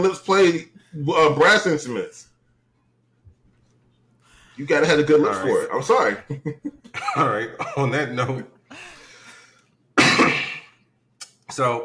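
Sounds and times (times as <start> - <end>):
speech: 0.0 - 2.3, 4.6 - 8.9, 11.5 - 11.8
laughter: 6.0 - 7.5
harsh cough of a person in conversation: 6.9 - 8.0, 10.0 - 10.8.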